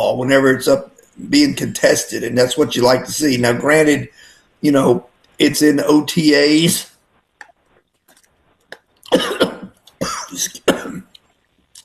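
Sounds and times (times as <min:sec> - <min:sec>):
speech: 0:00.1 - 0:06.9
person coughing after a sip of water went down the wrong way: 0:09.1 - 0:11.1.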